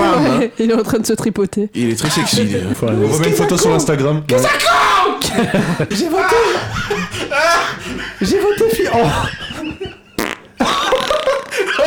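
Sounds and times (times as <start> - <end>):
laughter: 0.0 - 0.6, 1.8 - 11.8
speech: 0.4 - 9.4
loud fart: 10.1 - 11.8.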